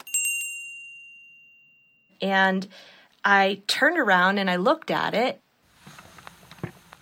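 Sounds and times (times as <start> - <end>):
small lever-operated dining room bell ringing in a historic house museum: 0.0 - 2.2
speech: 2.2 - 5.4.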